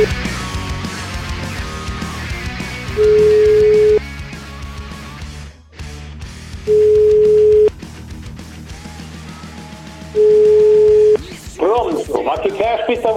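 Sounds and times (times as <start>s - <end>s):
electronic telephone beeps after a call is cut off: 3.0s - 4.0s, 6.7s - 7.7s, 10.2s - 11.2s
man talking: 11.5s - 13.1s.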